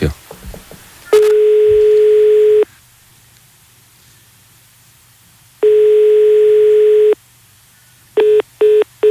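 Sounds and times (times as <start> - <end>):
long steady telephone ringback tones: 1.1 - 2.7, 5.6 - 7.2, 8.2 - 9.0.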